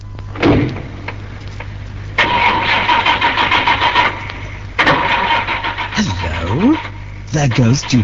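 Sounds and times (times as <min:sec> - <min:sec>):
car door thudding shut: 0:00.4 - 0:01.0
car engine starting and revving as the car pulls away: 0:02.2 - 0:08.0
speech: 0:07.4 - 0:08.0.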